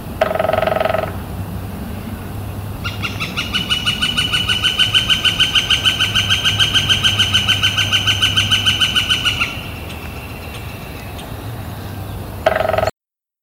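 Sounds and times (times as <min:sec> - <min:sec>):
brief bird call: 0:00.2 - 0:01.2, 0:02.8 - 0:12.9
male northern flicker drumming: 0:00.2 - 0:01.4, 0:02.8 - 0:11.4, 0:12.4 - 0:13.0.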